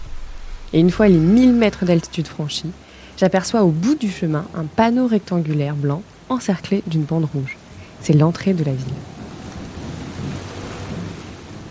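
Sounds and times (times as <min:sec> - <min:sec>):
deep thunder rumbling: 0:00.0 - 0:05.2, 0:07.9 - 0:11.7
heavy rain: 0:00.0 - 0:11.7
speech: 0:00.7 - 0:09.1.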